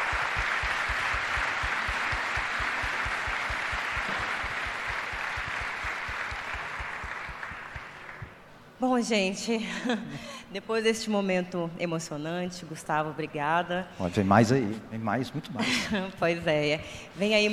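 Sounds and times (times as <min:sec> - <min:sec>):
crowd applauding in tribute to a deceased football player: 0:00.0 - 0:08.5
speech: 0:08.8 - 0:17.5.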